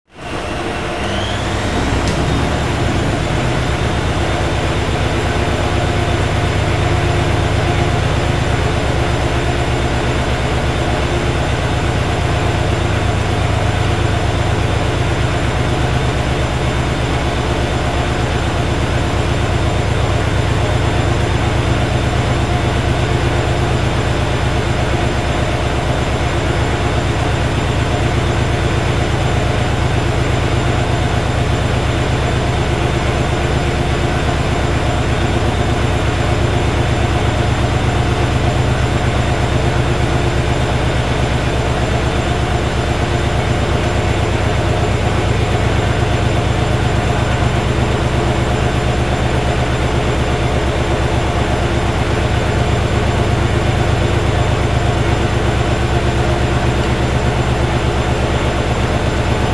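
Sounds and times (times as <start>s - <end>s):
washing machine running: 0.1s - 59.5s.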